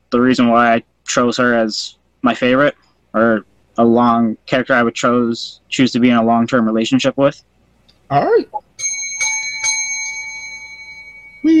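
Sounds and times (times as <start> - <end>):
speech: 0.1 - 7.5, 8.1 - 8.6
bright bell ringing: 8.8 - 11.5.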